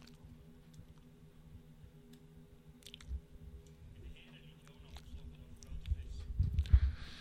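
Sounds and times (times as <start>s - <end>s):
big fish chewing and squishing while swallowing a man: 0.0s - 1.1s, 2.8s - 3.8s, 4.5s - 6.8s
big fish gulping and squelching: 2.8s - 3.2s, 4.0s - 6.8s.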